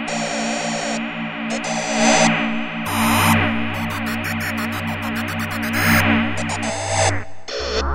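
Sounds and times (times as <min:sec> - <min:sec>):
synthesizer: 0:00.1 - 0:07.8.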